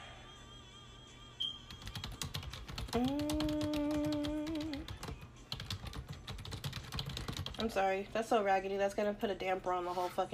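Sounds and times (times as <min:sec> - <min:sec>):
typing on a computer keyboard: 0:01.7 - 0:07.8
speech: 0:02.9 - 0:03.3, 0:07.6 - 0:10.3.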